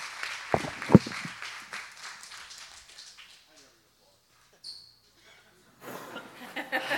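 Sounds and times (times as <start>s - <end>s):
audience applause: 0.0s - 3.3s
laughter: 5.8s - 6.9s.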